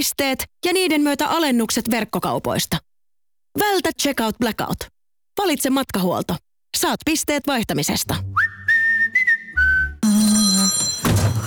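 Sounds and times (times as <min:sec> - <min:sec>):
speech: 0:00.0 - 0:02.8, 0:03.6 - 0:08.6
electronic mobile phone ringtone: 0:10.0 - 0:11.4.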